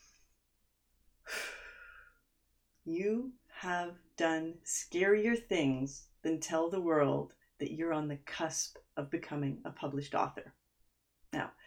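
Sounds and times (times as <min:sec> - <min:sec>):
deep breath: 0:01.2 - 0:02.2
speech: 0:02.8 - 0:10.6, 0:11.3 - 0:11.6.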